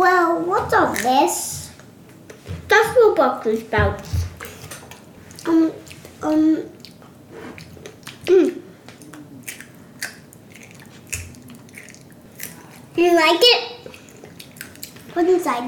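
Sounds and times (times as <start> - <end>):
speech: 0.7 - 1.6, 2.7 - 4.2, 5.5 - 6.8, 13.0 - 13.8, 15.2 - 15.6
crunchy chewing of raw broccoli: 4.9 - 13.0, 13.8 - 15.1.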